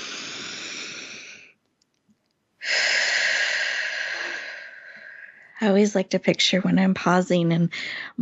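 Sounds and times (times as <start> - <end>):
long full exhale: 0.0 - 1.5, 2.6 - 5.6
deep breath in through the nose: 0.0 - 1.6, 2.6 - 5.6
speech: 5.6 - 8.1.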